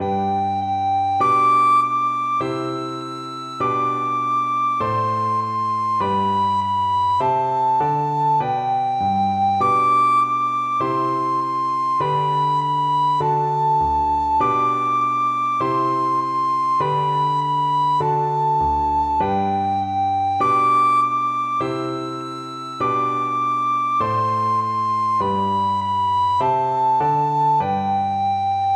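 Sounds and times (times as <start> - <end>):
recorder playing a nursery rhyme melody: 0.0 - 28.7.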